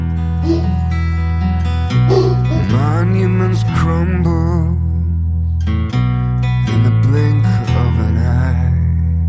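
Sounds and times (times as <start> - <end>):
steady music: 0.0 - 9.2
dog barking and yipping: 0.4 - 0.9, 2.1 - 2.8
speech: 3.2 - 4.8.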